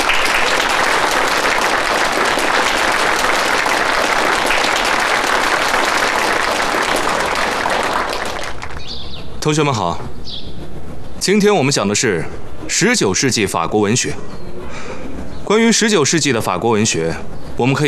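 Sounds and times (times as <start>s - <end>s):
large audience applauding to welcome a lecturer: 0.0s - 8.9s
speech: 9.5s - 10.5s, 11.2s - 14.9s, 15.5s - 17.8s.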